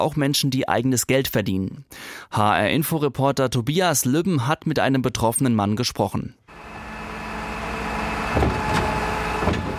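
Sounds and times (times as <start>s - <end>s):
speech: 0.0s - 6.4s
waste collection garbage truck idling in the street: 6.5s - 9.7s.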